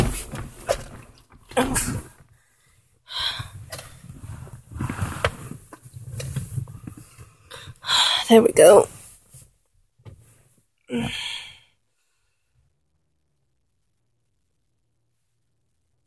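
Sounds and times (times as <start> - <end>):
leather seats creaking and groaning under shifting weight: 0.0 - 2.3, 3.4 - 7.3
speech: 1.6 - 2.1, 8.3 - 9.0.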